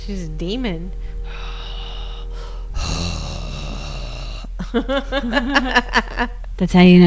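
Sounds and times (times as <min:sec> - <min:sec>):
speech: 0:00.0 - 0:01.1, 0:04.7 - 0:07.0
raspy heavy breathing of a sleeping woman: 0:01.0 - 0:05.4
low voiced murmur: 0:02.8 - 0:04.8
laughter: 0:04.3 - 0:06.5.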